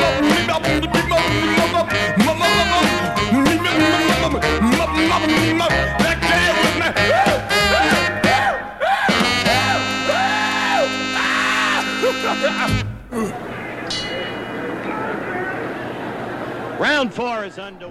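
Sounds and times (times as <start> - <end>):
rhythm and blues song with held instrumental chords: 0.0 - 16.8
laughter: 0.0 - 17.8
wild screamed and wailing vocals with loud yelps: 6.9 - 14.0
speech: 17.2 - 17.8.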